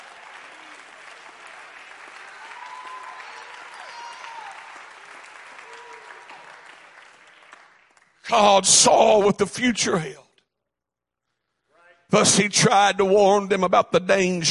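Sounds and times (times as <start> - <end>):
audience clapping hands: 0.0 - 8.9
speech: 8.3 - 10.2, 12.1 - 14.4.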